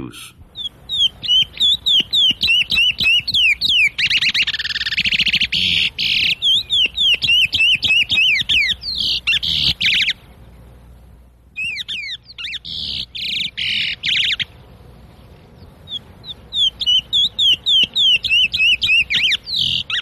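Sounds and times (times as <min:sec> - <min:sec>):
birdsong: 0:00.3 - 0:20.0.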